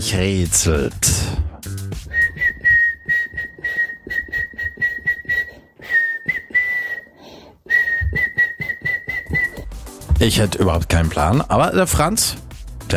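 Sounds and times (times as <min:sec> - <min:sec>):
speech: 0:00.0 - 0:01.4, 0:10.2 - 0:12.9
person whistling a pop tune: 0:02.0 - 0:09.8.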